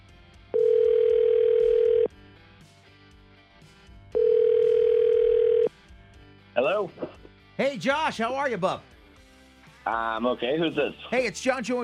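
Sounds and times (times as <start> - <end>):
telephone ringback tone on an outgoing call: 0.6 - 2.1, 4.2 - 5.7
speech: 7.6 - 8.9, 9.9 - 11.8.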